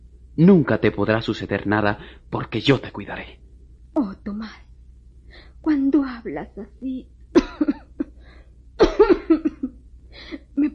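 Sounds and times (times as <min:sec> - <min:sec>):
speech: 0:00.4 - 0:03.4, 0:04.0 - 0:04.7, 0:05.6 - 0:07.8
person coughing harshly: 0:07.4 - 0:08.0, 0:08.8 - 0:09.7.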